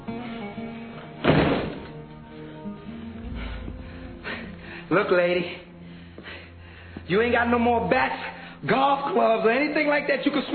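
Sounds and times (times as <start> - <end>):
faint tonal music: 0.0 - 10.5
door being shut: 1.2 - 2.0
speech: 4.9 - 5.6, 7.1 - 10.5.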